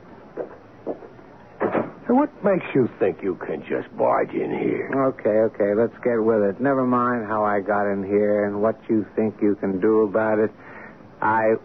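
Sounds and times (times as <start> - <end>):
door closing with bumps and a double clunk: 1.6 - 2.1
speech: 2.1 - 11.6.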